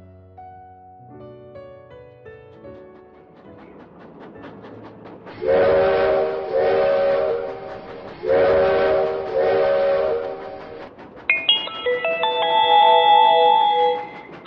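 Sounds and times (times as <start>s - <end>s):
small train's steam whistle blasts as train starts moving: 5.4s - 10.8s
bright chime-like melody of stepped tones: 11.3s - 14.2s.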